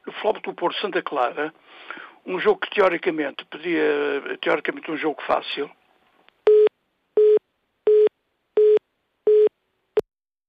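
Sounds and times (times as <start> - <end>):
speech: 0.2 - 5.8
telephone busy tone beeps after a dropped call: 6.5 - 9.5.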